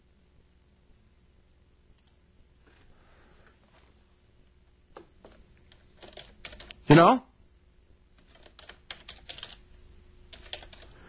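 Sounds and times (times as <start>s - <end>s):
typing an email on a computer keyboard: 5.2s - 6.8s, 8.2s - 9.6s, 10.3s - 11.0s
speech: 6.9s - 7.3s.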